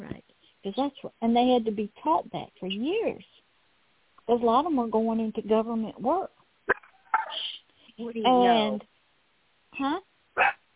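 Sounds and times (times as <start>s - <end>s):
speech: 0.6s - 3.4s, 4.3s - 6.4s, 8.0s - 8.9s, 9.8s - 10.6s
small puppy barking and yipping: 10.4s - 10.6s.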